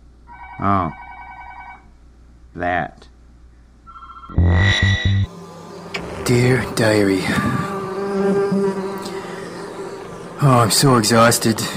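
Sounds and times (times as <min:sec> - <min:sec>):
speech: 0:00.6 - 0:01.0, 0:02.6 - 0:03.1, 0:04.3 - 0:05.4, 0:06.3 - 0:07.6, 0:08.2 - 0:08.8, 0:10.4 - 0:11.7
bees buzzing: 0:04.4 - 0:11.7.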